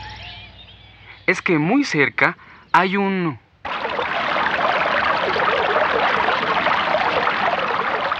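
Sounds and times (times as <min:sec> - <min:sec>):
speech: 0:01.3 - 0:03.4
spring water flowing and trickling: 0:03.7 - 0:08.1.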